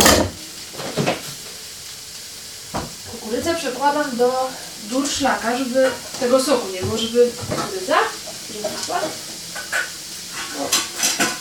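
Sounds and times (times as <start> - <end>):
kitchenware clattering: 0.0 - 1.3, 5.7 - 11.3
chicken breast sizzling while frying in a pan over a flame: 0.0 - 11.3
speech: 3.4 - 9.3.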